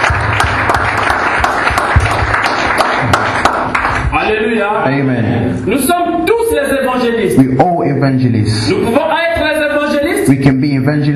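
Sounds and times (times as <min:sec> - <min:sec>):
church audience clapping in praise during a sermon: 0:00.0 - 0:04.2
speech: 0:04.5 - 0:09.2, 0:10.3 - 0:11.1.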